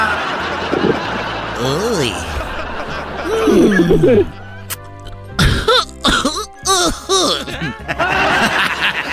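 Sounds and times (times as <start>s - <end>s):
laughter: 0.0s - 4.6s, 6.7s - 9.1s
speech: 3.9s - 4.4s
person in a dinosaur costume smoking marijuana coughing harshly: 5.4s - 7.8s.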